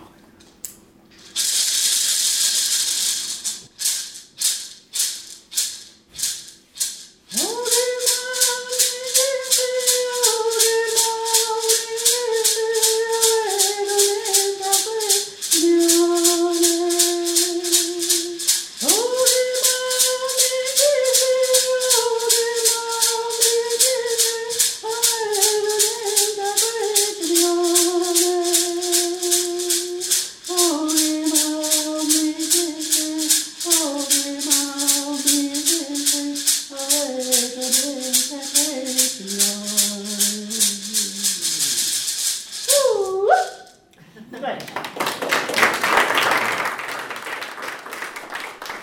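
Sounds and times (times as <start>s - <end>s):
shaken rattle: 1.1s - 43.9s, 44.9s - 48.8s
single voice singing a chant-like song: 7.3s - 42.0s.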